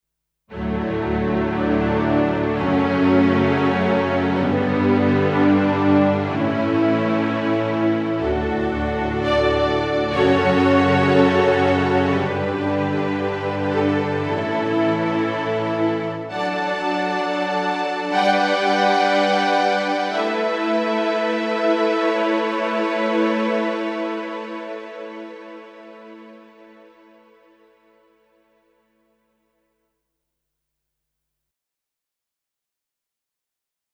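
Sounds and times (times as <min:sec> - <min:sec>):
Kawai ES120 digital piano strings: 0:00.5 - 0:26.5.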